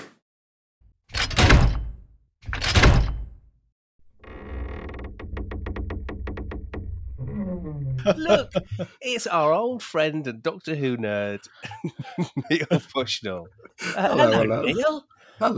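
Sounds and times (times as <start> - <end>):
door being opened to let someone in: 1.1 - 3.4, 4.1 - 8.8
laughter: 8.0 - 9.0, 11.5 - 15.5
speech: 8.0 - 15.5.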